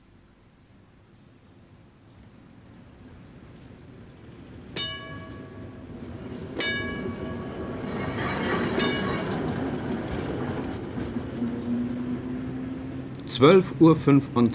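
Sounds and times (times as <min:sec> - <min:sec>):
tram railcar wheels rumbling on rails in a city tram depot: 0:02.2 - 0:14.5
rising tonal whine of a tram railcar: 0:04.8 - 0:13.8.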